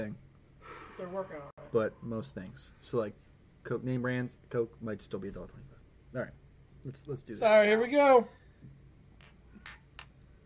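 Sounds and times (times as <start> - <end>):
speech: 0.0 - 0.2, 1.0 - 8.8
glasses clinking in a toast: 9.2 - 10.3.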